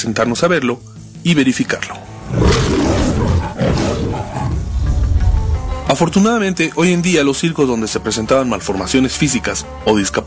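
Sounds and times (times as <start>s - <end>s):
speech: 0.0s - 2.8s, 5.9s - 10.2s
lion roaring for a film studio logo: 2.2s - 5.8s.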